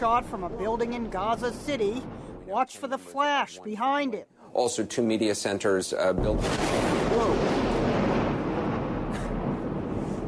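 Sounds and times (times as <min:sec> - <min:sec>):
large explosion rumbling in a city: 0:00.0 - 0:02.5, 0:06.1 - 0:10.2
speech: 0:00.0 - 0:07.7.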